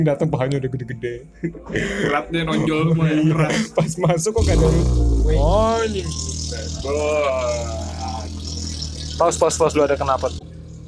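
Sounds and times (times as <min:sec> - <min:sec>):
speech: 0:00.0 - 0:07.9, 0:09.2 - 0:10.4
car with a loud exhaust passing: 0:04.4 - 0:10.8.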